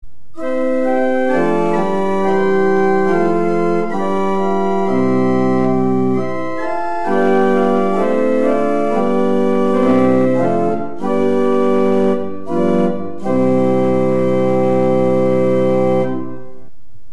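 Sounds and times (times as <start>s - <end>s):
pipe organ with Holpijp 8', Prestant 4' and Quint 3' stops: 0.4s - 16.7s.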